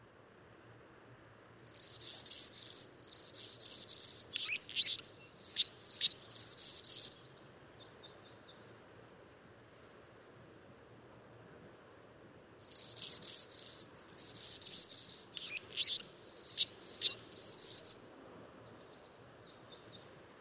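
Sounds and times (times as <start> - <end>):
Anna's hummingbird song in scratchy very high buzzy bursts: 1.6 - 7.1, 12.6 - 18.0
faint twittering: 1.6 - 7.1, 12.6 - 18.0.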